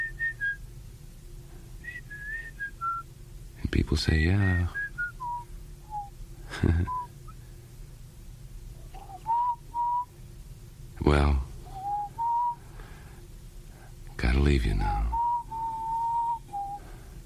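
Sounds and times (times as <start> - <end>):
person whistling a wandering melody: 0.0 - 0.6, 1.8 - 3.1, 4.7 - 6.1, 9.0 - 10.1, 11.7 - 12.6, 15.1 - 16.8
speech: 3.8 - 4.8, 6.6 - 7.0, 11.1 - 11.4, 14.6 - 15.1.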